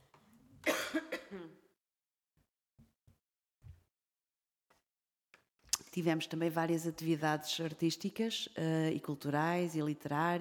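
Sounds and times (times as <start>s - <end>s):
person with a lingering cough coughing and clearing throat: 0.6s - 1.7s
speech: 6.0s - 10.4s.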